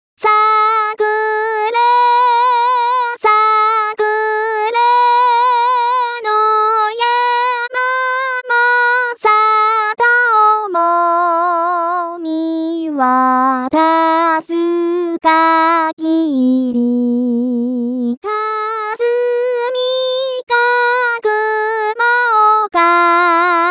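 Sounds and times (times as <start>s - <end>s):
person singing traditional song unaccompanied: 0.2s - 23.6s.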